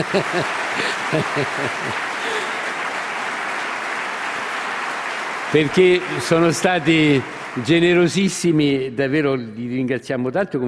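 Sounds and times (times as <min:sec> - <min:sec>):
speech: 0:00.0 - 0:02.1, 0:05.5 - 0:10.6
laughter: 0:00.0 - 0:02.7
large audience applause: 0:00.0 - 0:08.9.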